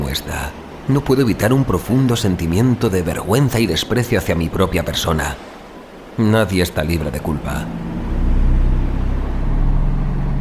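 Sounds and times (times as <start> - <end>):
speech: 0.1 - 5.5, 6.2 - 7.9
garbage truck engine rumbling roar: 7.5 - 10.3.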